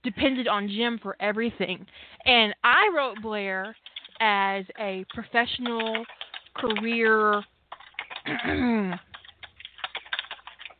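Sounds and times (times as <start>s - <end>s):
speech: 0.0s - 7.5s, 8.2s - 9.1s
typing on a computer keyboard: 2.9s - 4.4s, 5.0s - 10.7s.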